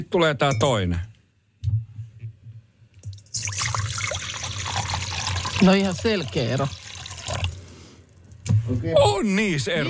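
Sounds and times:
speech: 0:00.0 - 0:01.1, 0:05.6 - 0:06.8, 0:08.7 - 0:09.8
liquid poured into a glass: 0:03.1 - 0:07.7.

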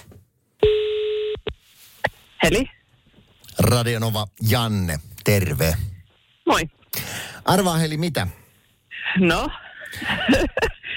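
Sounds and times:
steady buzzing telephone tone while a call is being placed: 0:00.6 - 0:01.5
speech: 0:02.4 - 0:02.8, 0:03.6 - 0:05.9, 0:06.5 - 0:06.8, 0:07.5 - 0:08.4, 0:09.2 - 0:10.8
laughter: 0:09.0 - 0:10.9.

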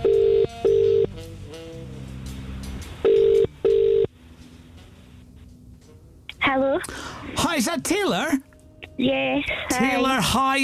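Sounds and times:
electronic telephone ringing tone through the handset: 0:00.0 - 0:01.1, 0:03.0 - 0:04.1
speech: 0:07.7 - 0:10.6.

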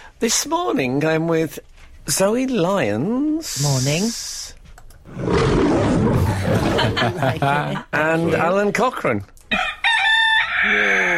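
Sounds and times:
speech: 0:00.2 - 0:09.7, 0:10.6 - 0:11.1
lion roar sound effect: 0:05.1 - 0:07.3
laughter: 0:06.2 - 0:07.9.

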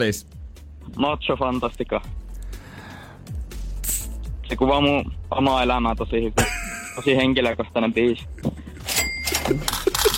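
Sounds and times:
speech: 0:00.0 - 0:02.2, 0:04.5 - 0:08.4, 0:09.5 - 0:09.8
cash register mechanical clatter: 0:08.8 - 0:10.1
bright ringing cash register bell tone: 0:08.9 - 0:09.8.

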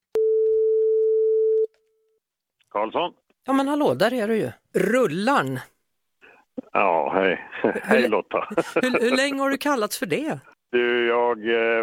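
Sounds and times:
telephone line tone while a call is being placed: 0:00.2 - 0:01.7
speech: 0:02.8 - 0:05.7, 0:06.8 - 0:11.8.

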